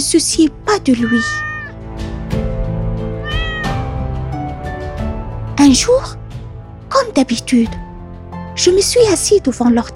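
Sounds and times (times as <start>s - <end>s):
speech: 0.0s - 1.5s, 5.6s - 6.2s, 7.0s - 7.8s, 8.6s - 9.9s
cat meowing: 0.9s - 1.8s, 3.2s - 4.0s, 4.6s - 5.0s.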